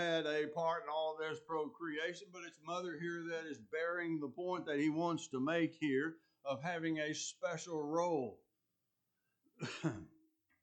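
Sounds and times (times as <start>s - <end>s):
speech: 0.0s - 8.4s, 9.6s - 10.2s
rough throat clearing during a sermon: 9.6s - 10.2s.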